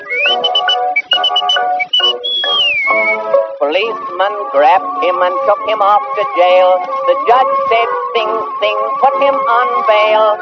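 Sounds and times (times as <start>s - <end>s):
person whistling a lilting tune: 0.0s - 3.3s
steady harmonic musical backing: 0.0s - 10.3s
speech: 3.7s - 10.3s.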